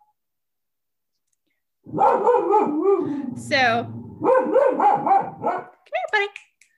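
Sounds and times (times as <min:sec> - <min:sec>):
dog barking at neighbors: 0:01.9 - 0:03.2, 0:04.2 - 0:05.8.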